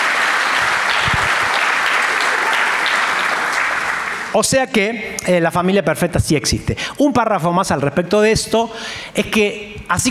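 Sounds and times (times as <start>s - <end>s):
crowd applause: 0.0s - 4.4s
speech: 4.4s - 10.0s.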